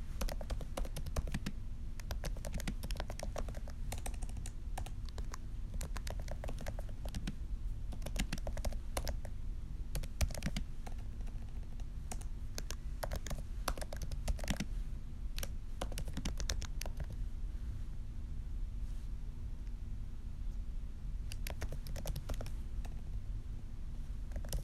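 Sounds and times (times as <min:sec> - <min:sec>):
steady low hum: 0:00.0 - 0:24.6
dry keyboard typing: 0:00.2 - 0:09.3, 0:09.9 - 0:14.7, 0:15.4 - 0:17.2, 0:21.3 - 0:23.1, 0:24.3 - 0:24.6.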